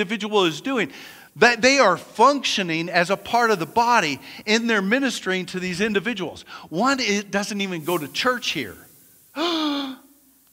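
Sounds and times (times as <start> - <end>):
speech: 0.0 - 8.8, 9.4 - 10.0
person gasping: 9.4 - 10.2.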